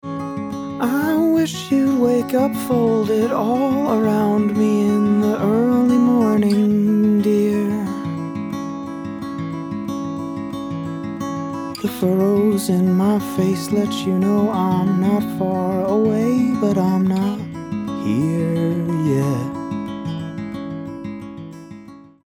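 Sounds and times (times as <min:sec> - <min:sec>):
guitar: 0:00.0 - 0:22.2
person singing: 0:00.8 - 0:08.1, 0:11.8 - 0:19.7.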